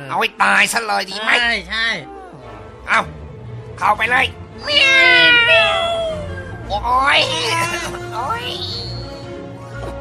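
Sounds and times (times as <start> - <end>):
speech: 0.1 - 3.2, 3.8 - 9.0
cat meowing: 4.6 - 6.6.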